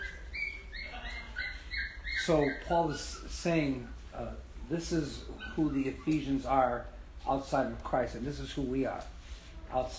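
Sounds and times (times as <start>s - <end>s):
dog whimpering in high-pitched whines: 0.0s - 3.4s, 5.2s - 6.4s
speech: 2.3s - 9.9s.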